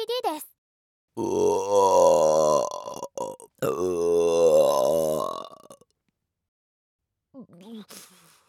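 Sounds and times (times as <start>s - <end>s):
speech: 1.2s - 1.5s
loud drawn-out burp: 1.2s - 5.9s.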